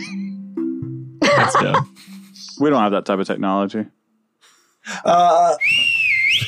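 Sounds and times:
speech: 1.4s - 4.0s, 4.8s - 5.8s
person whistling: 5.6s - 6.4s.

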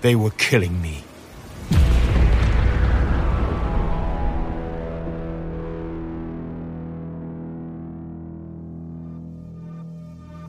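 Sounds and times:
speech: 0.0s - 1.1s
spaceship auxiliary thruster explosion from a laser beam: 1.7s - 7.5s.

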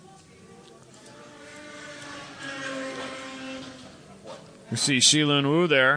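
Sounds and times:
racing car engine roaring as the car goes by: 1.0s - 4.5s
speech: 4.7s - 5.9s.

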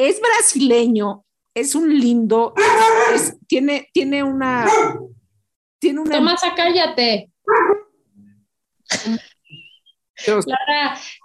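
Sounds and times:
speech: 0.0s - 5.2s, 5.8s - 7.8s, 8.9s - 9.3s, 10.2s - 11.2s
adolescent female dog barking: 2.6s - 3.4s, 4.6s - 5.2s, 7.5s - 8.0s.

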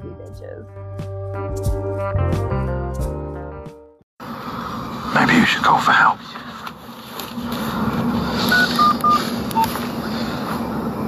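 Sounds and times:
speech: 0.3s - 2.4s, 5.3s - 6.4s
steady low hum of noise: 4.2s - 11.0s
touch-tone beeps of a phone being dialed: 8.5s - 9.8s.

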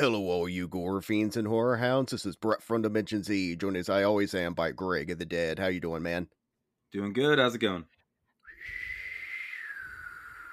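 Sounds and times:
speech: 0.0s - 8.0s
person whistling a film theme tune: 8.4s - 10.5s.

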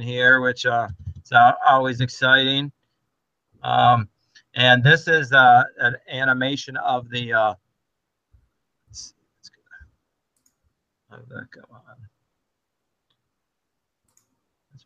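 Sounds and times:
speech: 0.0s - 2.8s, 3.6s - 7.6s, 8.9s - 9.2s, 11.1s - 12.1s
computer mouse clicking: 10.4s - 10.6s, 14.1s - 14.4s.

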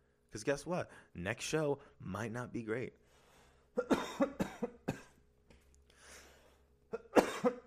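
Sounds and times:
speech: 0.3s - 3.0s, 3.8s - 4.8s
person coughing: 3.8s - 5.2s, 6.9s - 7.6s.

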